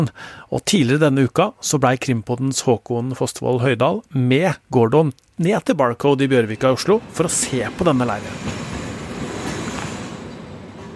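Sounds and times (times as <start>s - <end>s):
speech: 0.0s - 8.7s
train rolling past at railway station entrance: 6.4s - 10.9s.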